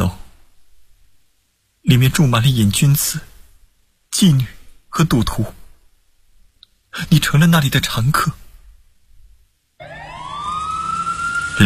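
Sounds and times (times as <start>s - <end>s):
speech: 1.9s - 3.3s, 4.1s - 5.6s, 6.9s - 8.4s
police siren wailing on an empty rainy street before dawn: 9.8s - 11.6s.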